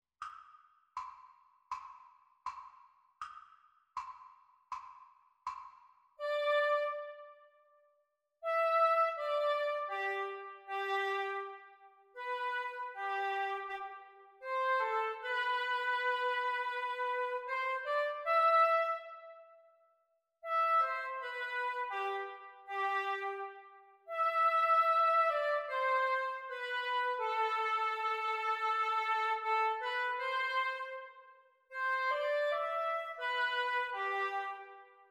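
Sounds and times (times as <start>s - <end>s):
oboe duet practice: 6.2s - 7.4s, 8.4s - 19.4s, 20.4s - 34.8s.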